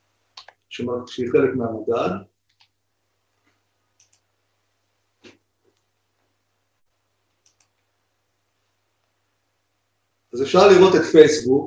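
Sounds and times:
low electrical hum: 0.0s - 11.6s
speech: 0.8s - 2.3s, 10.4s - 11.6s
typing on a computer keyboard: 7.4s - 7.8s.

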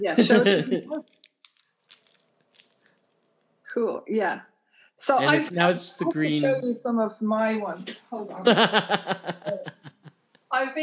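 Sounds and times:
laughter: 0.0s - 1.0s, 8.3s - 10.1s
speech: 0.0s - 1.1s, 3.7s - 10.8s
sticky item crumpled into a ball: 0.9s - 3.3s.

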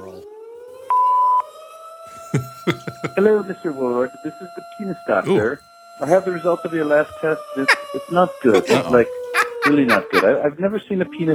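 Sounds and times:
sustained siren tone: 0.1s - 1.8s
laughter: 2.1s - 4.1s, 5.1s - 6.3s, 6.9s - 11.3s
speech: 2.3s - 11.3s.

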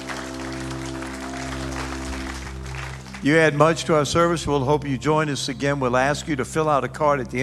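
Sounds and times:
large crowd applauding in a room: 0.0s - 4.4s
speech: 3.2s - 7.4s.

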